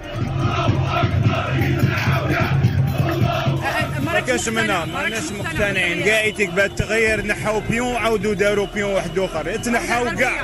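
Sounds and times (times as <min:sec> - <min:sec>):
dense roar of the protest gathering: 0:00.0 - 0:03.9
large protest crowd chanting a slogan: 0:00.0 - 0:10.4
speech: 0:04.3 - 0:10.4.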